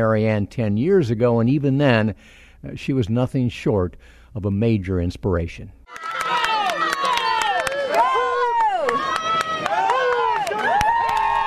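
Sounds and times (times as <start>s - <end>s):
speech: 0.0s - 6.1s
crowd cheering and shouting at swimming championships: 5.9s - 11.4s
sharp claps: 5.9s - 11.4s.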